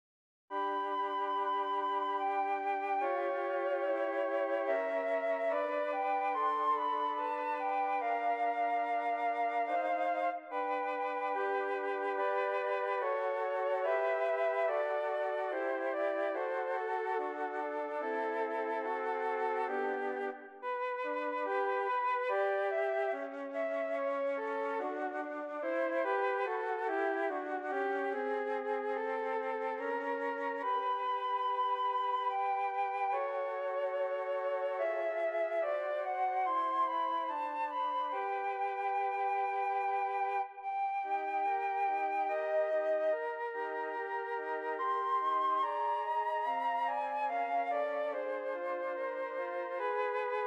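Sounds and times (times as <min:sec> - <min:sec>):
three flutes playing: 0:00.5 - 0:50.4.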